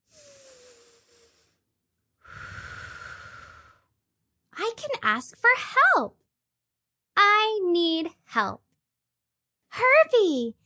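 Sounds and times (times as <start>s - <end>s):
deep breath: 0.0s - 4.0s
speech: 5.0s - 6.2s, 7.7s - 8.6s, 9.8s - 10.6s.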